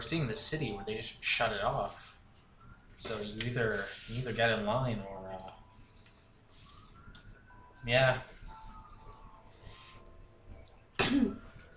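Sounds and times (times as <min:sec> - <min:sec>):
speech: 0:00.0 - 0:02.1, 0:03.0 - 0:05.5, 0:07.8 - 0:08.3
harsh coughs: 0:11.0 - 0:11.5.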